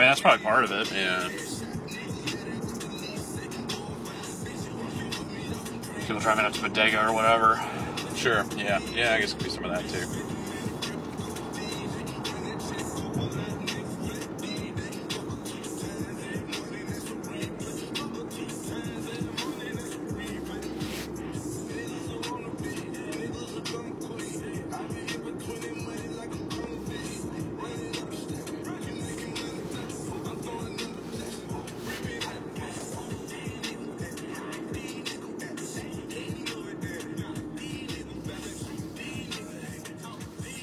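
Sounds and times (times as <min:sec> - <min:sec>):
speech: 0:00.0 - 0:01.5, 0:06.1 - 0:10.4
car tires rolling as car is pushed by hand: 0:00.0 - 0:40.6.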